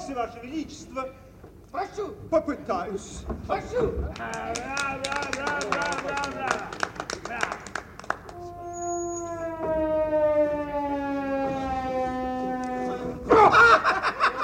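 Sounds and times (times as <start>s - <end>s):
speech: 0.1s - 7.6s
laughter: 4.2s - 7.7s, 13.0s - 14.4s
pipe played badly with off-key notes: 8.2s - 13.5s.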